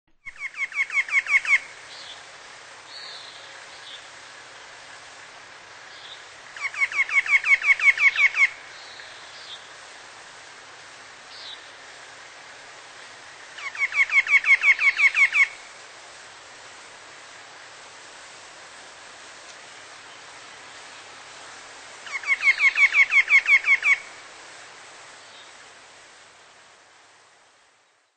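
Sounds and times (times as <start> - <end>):
White-breasted Nuthatch calling: 0.2 - 2.2, 6.0 - 9.7, 13.6 - 15.6, 22.0 - 24.2.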